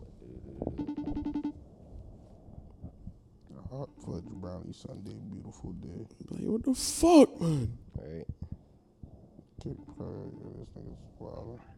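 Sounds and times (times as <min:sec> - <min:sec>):
phone ringing tone of an outgoing call: 0:00.8 - 0:01.5, 0:09.8 - 0:10.4
speech: 0:04.1 - 0:08.3, 0:09.6 - 0:11.7.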